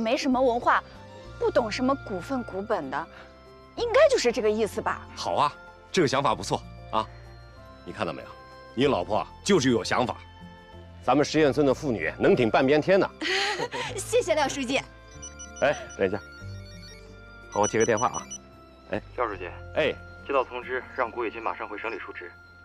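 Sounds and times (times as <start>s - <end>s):
speech: 0.0s - 7.2s, 7.9s - 10.3s, 11.0s - 15.0s, 15.6s - 16.3s, 17.5s - 22.4s
telephone with melodic warbling ringtone ringing: 15.1s - 18.4s.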